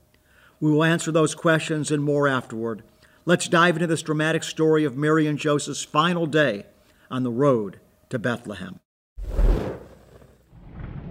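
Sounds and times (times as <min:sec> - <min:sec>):
speech: 0:00.6 - 0:08.8
thunder rumbling: 0:10.5 - 0:11.0.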